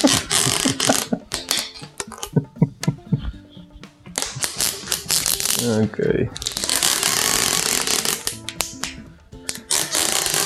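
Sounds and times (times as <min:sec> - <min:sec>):
adhesive tape being pulled off the roll: 0:00.0 - 0:02.2, 0:04.2 - 0:05.7, 0:06.4 - 0:10.4
adhesive tape crackling: 0:00.0 - 0:03.3, 0:04.0 - 0:10.4
laughter: 0:00.0 - 0:04.9
speech: 0:05.6 - 0:06.5.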